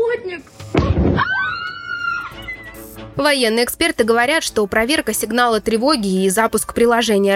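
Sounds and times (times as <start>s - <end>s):
explosive blast of a drone or missile in a city centre: 0.7s - 1.3s
high wavering wail of a passing drone or missile: 1.2s - 2.8s
speech: 3.2s - 7.3s.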